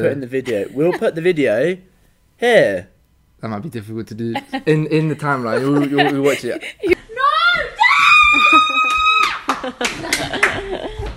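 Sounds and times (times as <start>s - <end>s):
rapid agitated talking: 0.0s - 1.4s, 3.5s - 7.7s
speech: 0.0s - 7.0s
laughter: 0.3s - 1.3s, 4.4s - 7.3s, 8.2s - 11.1s
girl screaming in fright: 7.2s - 9.5s.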